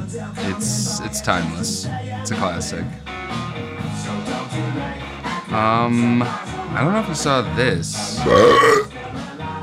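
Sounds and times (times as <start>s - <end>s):
speech: 0.1s - 4.2s, 5.6s - 8.9s
low throaty rumbling: 8.2s - 8.9s
person burping: 8.2s - 8.9s
vocal sounds: 8.2s - 8.9s.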